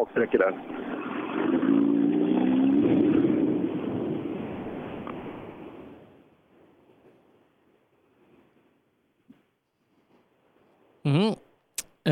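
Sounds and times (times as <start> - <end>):
speech: 0.0 - 1.9
tuned two-wheel-drive rally car engine drone racing on a stage: 0.0 - 6.2.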